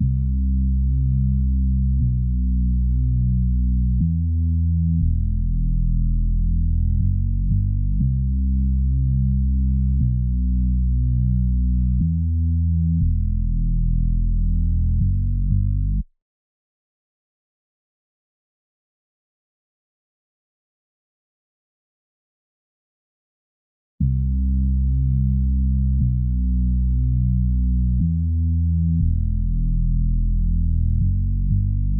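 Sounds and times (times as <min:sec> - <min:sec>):
bass melody loop in E minor at 120 BPM: 0:00.0 - 0:16.0, 0:24.0 - 0:31.9.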